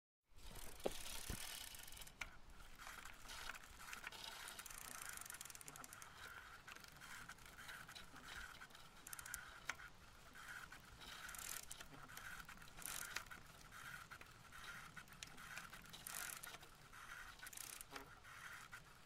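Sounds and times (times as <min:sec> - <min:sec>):
bicycle riding: 0:00.3 - 0:19.0.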